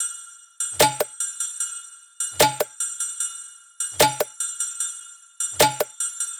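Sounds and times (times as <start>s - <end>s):
percussion loop: 0.7s - 1.2s, 2.4s - 2.8s, 4.0s - 4.4s, 5.6s - 6.1s.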